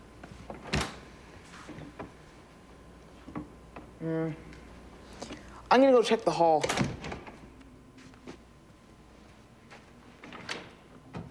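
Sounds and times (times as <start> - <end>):
speech: 4.0 - 4.5, 5.7 - 6.9
closet door creaking: 6.6 - 7.4, 10.2 - 11.2.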